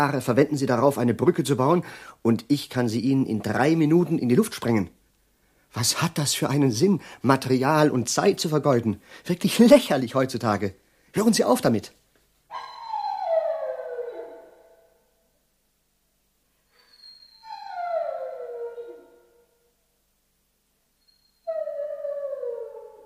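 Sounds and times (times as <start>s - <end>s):
speech: 0.0s - 5.0s, 5.7s - 12.7s
dog howling on a humid sultry day: 12.5s - 15.0s, 17.1s - 19.5s, 21.4s - 23.0s.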